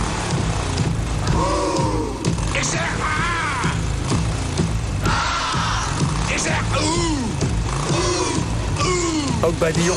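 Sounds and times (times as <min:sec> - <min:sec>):
loud motorcycle engine revving: 0:00.0 - 0:09.9
speech: 0:09.4 - 0:09.9.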